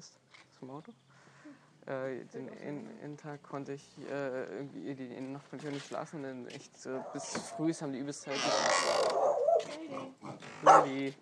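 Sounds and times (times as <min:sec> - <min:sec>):
speech: 0:00.0 - 0:11.2
nuisance dog barking: 0:07.0 - 0:07.7, 0:09.1 - 0:09.8, 0:10.6 - 0:11.0.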